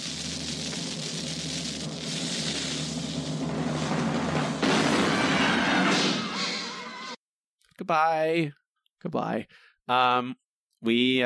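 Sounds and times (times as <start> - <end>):
rushing hissing build-up: 0.0 - 4.6
cannon blast sound effect: 3.7 - 6.9
speech: 7.9 - 11.2.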